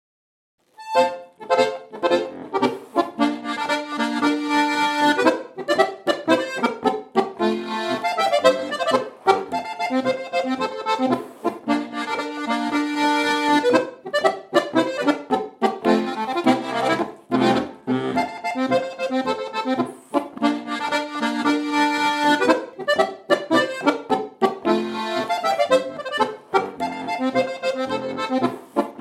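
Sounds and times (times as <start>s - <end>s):
accordion: 0.6s - 28.9s
polka folk music: 0.7s - 28.9s.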